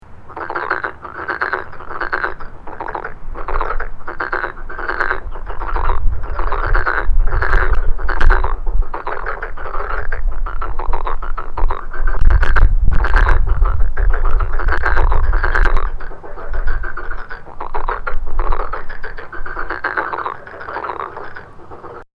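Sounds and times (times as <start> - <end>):
Rana nigromaculata calling: 0.0 - 22.1.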